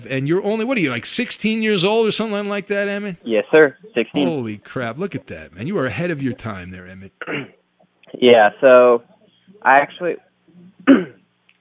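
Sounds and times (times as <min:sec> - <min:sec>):
faint low murmur: 0:00.0 - 0:11.1
speech: 0:00.0 - 0:11.2
person clearing throat: 0:07.2 - 0:07.6, 0:10.8 - 0:11.2.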